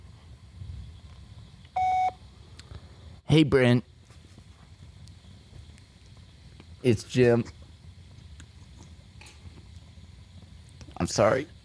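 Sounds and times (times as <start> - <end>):
phone voicemail beep: 1.8 - 2.2
speech: 3.3 - 3.9, 6.8 - 7.6, 11.1 - 11.6.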